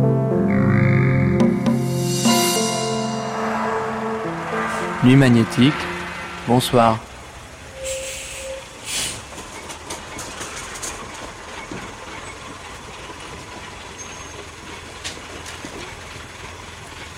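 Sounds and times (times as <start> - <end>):
brief high whine: 0.0 - 8.0
metro train rumbling along the rails: 1.4 - 17.1
speech: 5.0 - 5.9, 6.5 - 7.1
metallic squeals and clicks: 7.7 - 8.8, 13.9 - 14.6.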